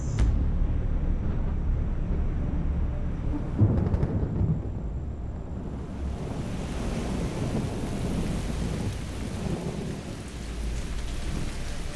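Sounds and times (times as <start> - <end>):
deep thunder rolling and rumbling: 0.4 - 11.9
heavy tropical rain pouring: 3.5 - 11.9.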